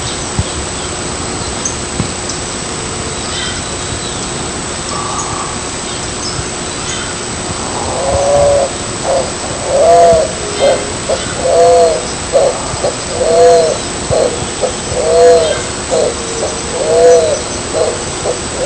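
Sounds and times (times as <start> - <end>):
spot-winged pigeon cooing: 6.9 - 18.6.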